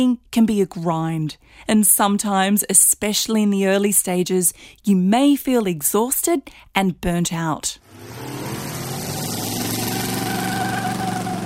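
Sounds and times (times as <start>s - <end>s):
speech: 0.0s - 8.8s
car engine revving hard during a tire burnout: 7.8s - 11.4s.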